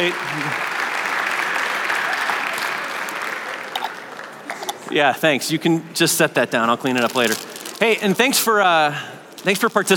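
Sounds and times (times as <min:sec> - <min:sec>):
speech: 0:00.0 - 0:00.7, 0:04.9 - 0:09.9
room full of people applauding: 0:00.0 - 0:04.6.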